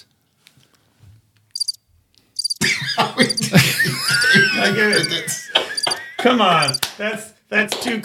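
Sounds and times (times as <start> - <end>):
cricket chirping sound effect: 1.6 - 1.8, 2.4 - 2.7, 4.0 - 5.2, 5.8 - 6.0, 6.6 - 6.8
laughter: 2.6 - 6.8
speech: 3.2 - 5.6, 6.2 - 8.0.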